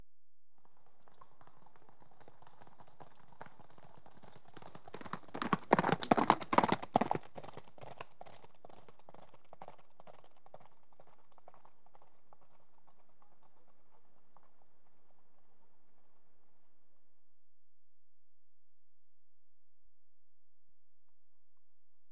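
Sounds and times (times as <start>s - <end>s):
two horses galloping past on gravel: 0.6s - 15.4s.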